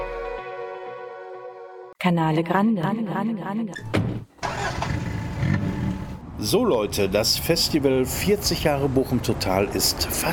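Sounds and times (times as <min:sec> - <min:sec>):
speech: 0:02.0 - 0:04.3, 0:06.4 - 0:10.3
car engine running while driving: 0:04.4 - 0:07.5.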